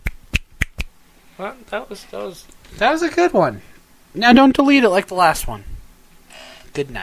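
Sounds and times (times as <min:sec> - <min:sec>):
sharp crisp finger snaps: 0:00.0 - 0:00.9
speech: 0:01.4 - 0:05.7, 0:06.8 - 0:07.0.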